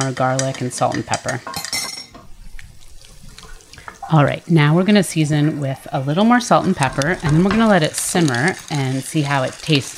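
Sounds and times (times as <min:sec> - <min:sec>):
speech: 0:00.0 - 0:01.6, 0:04.1 - 0:09.9
broth of bouillon concentrate and water pouring into a cooking pot: 0:02.3 - 0:04.1, 0:06.0 - 0:09.9.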